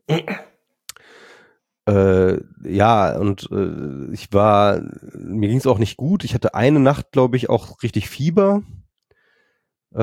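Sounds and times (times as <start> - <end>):
person coughing: 0.1 - 0.6
breathy exhale: 1.0 - 1.6
speech: 1.9 - 8.8.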